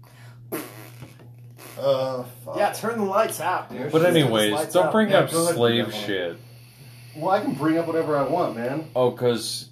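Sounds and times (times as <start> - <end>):
steady low electrical hum: 0.0 - 9.7
husky dog farting: 0.5 - 2.3
speech: 1.8 - 6.5, 7.2 - 9.7.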